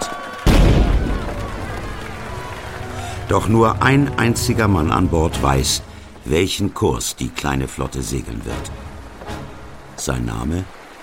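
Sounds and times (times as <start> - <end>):
cannon salvos fired aboard a sailing ship: 0.5 - 2.4
speech: 3.3 - 8.8, 10.0 - 10.8.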